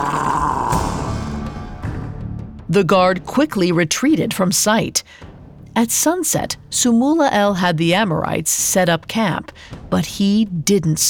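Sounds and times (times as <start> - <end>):
man growling: 0.0 - 1.4
speech: 2.7 - 11.0.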